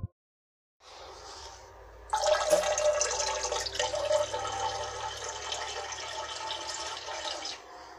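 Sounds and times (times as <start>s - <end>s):
water running from a tap into a ladle and basin: 2.1s - 7.7s.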